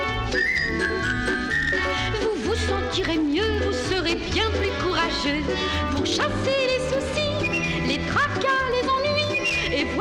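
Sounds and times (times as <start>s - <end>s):
person whistling a cheerful tune: 0.2s - 2.1s, 7.2s - 8.0s, 9.2s - 9.9s
speech: 2.6s - 7.2s.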